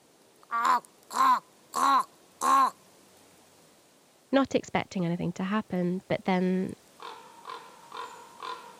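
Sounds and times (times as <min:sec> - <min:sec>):
person imitating hoarse croaking raven caws in a winter oak forest: 0:00.4 - 0:02.8, 0:07.0 - 0:08.7
speech: 0:00.5 - 0:01.0, 0:04.3 - 0:06.8.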